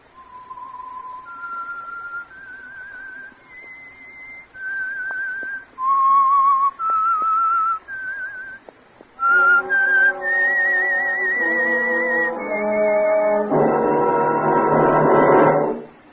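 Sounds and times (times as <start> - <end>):
whistled signature tune for a radio program: 0.1 - 8.6, 9.2 - 16.1
sustained instrumental tones: 9.2 - 16.1.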